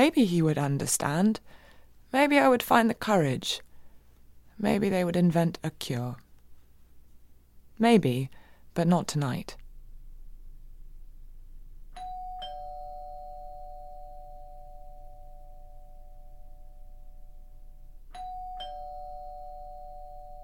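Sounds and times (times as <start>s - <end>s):
speech: 0.0s - 3.7s, 4.6s - 6.2s, 7.8s - 9.6s
two-tone ding-dong doorbell chime: 11.9s - 20.4s.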